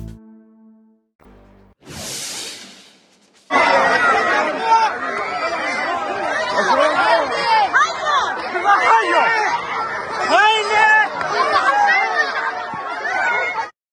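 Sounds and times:
burst of noise: 1.8s - 4.0s
dense panicked crowd shouting and crying out in agitation: 3.5s - 13.8s.

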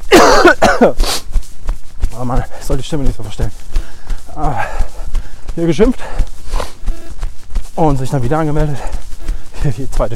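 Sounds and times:
man hacking and clearing throat: 0.0s - 1.2s
man coughing: 0.0s - 1.3s
shuffling: 0.0s - 10.1s
speech: 0.8s - 1.0s, 2.7s - 3.8s, 5.6s - 6.3s, 7.8s - 9.0s, 9.6s - 10.1s
breathy rasp: 3.5s - 9.9s.

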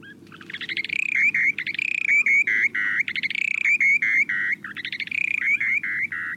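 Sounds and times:
short-billed dowitcher breeding song in flight: 0.0s - 6.3s.

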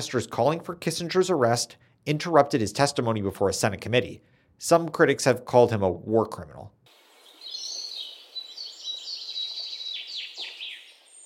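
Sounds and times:
speech: 0.0s - 6.8s
small birds chirping and tweeting: 6.9s - 11.2s.

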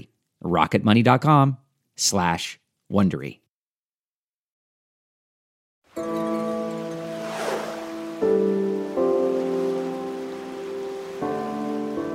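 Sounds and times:
speech: 0.5s - 3.4s
steady rain on choppy river water in fog: 5.9s - 12.1s.

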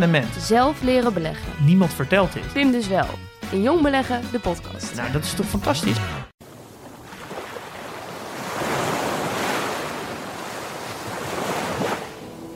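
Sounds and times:
speech: 0.0s - 6.3s
waves breaking on a lonely beach: 6.4s - 12.5s.

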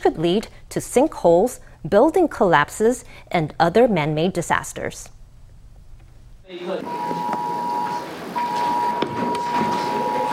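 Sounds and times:
speech: 0.0s - 5.2s, 6.5s - 7.4s
steady high electronic earthquake drill alarm tone in a classroom: 6.5s - 10.3s.

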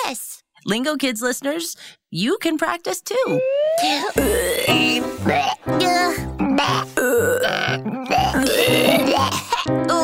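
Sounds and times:
speech: 0.1s - 10.0s
loud drawn-out burps: 3.8s - 5.6s, 6.4s - 9.7s.

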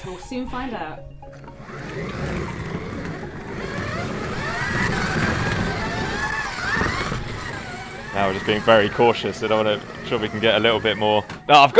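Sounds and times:
speech: 0.0s - 2.3s, 8.2s - 11.7s
continuous rattling rumble of slot cars on a track: 0.0s - 11.7s
small electric motors of toy slot cars whining: 1.2s - 11.7s.

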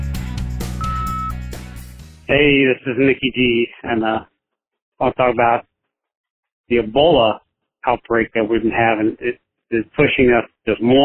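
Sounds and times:
high-pitched answering machine beep: 0.8s - 1.4s
speech: 2.3s - 4.3s, 5.0s - 5.7s, 6.7s - 11.0s.

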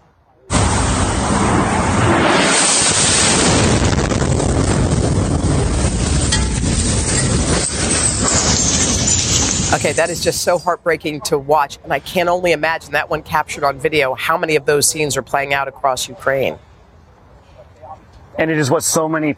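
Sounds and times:
rocket strike explosion: 0.5s - 10.6s
harsh roaring rush of noise: 0.5s - 11.0s
speech: 9.8s - 16.7s, 18.4s - 19.3s.

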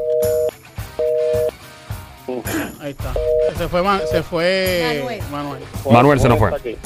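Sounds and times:
phone line busy tone beeps after a dropped call: 0.0s - 1.5s, 3.2s - 4.3s
speech: 2.4s - 6.8s.

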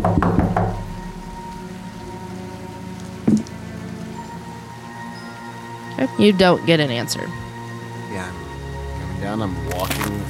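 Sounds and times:
solid knocks on a house door in a residential area: 0.0s - 0.9s
speech: 6.0s - 7.4s, 9.2s - 10.2s.

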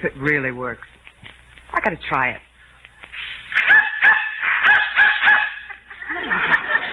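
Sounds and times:
speech: 0.0s - 1.1s, 1.7s - 2.5s
dog barking in response to a dog whistle: 3.6s - 5.8s
laughter: 5.6s - 6.9s.

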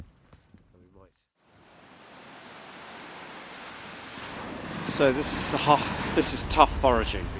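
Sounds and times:
surf on a rocky beach of barnacle-encrusted rocks and boulders: 1.5s - 7.3s
strong wind on a rocky beach: 1.6s - 7.3s
speech: 5.0s - 7.3s.

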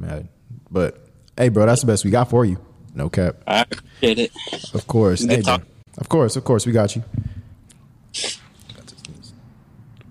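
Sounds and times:
speech: 0.1s - 7.3s
stifled sneeze: 3.5s - 5.6s, 8.1s - 8.6s.

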